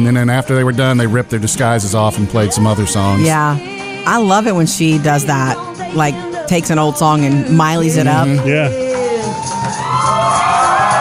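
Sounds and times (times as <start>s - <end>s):
speech: 0.0s - 10.4s
subway crowd cheering: 8.3s - 10.9s
high yells from subway crowd: 8.7s - 10.9s.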